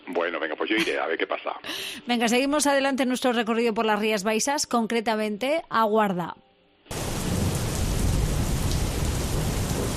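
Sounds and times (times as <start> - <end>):
speech: 0.2 - 6.4
deep low thunder rumble: 6.9 - 9.9
heavy rain pouring with a dense hissing roar: 6.9 - 9.9.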